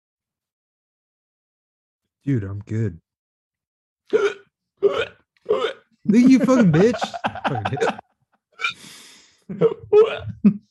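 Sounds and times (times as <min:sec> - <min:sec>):
speech: 0:02.2 - 0:03.0, 0:04.1 - 0:05.0, 0:06.0 - 0:08.0, 0:09.5 - 0:10.6
person hiccuping: 0:04.1 - 0:05.8, 0:09.5 - 0:10.4
laughter: 0:06.1 - 0:08.2
breathy gasp: 0:08.6 - 0:09.5.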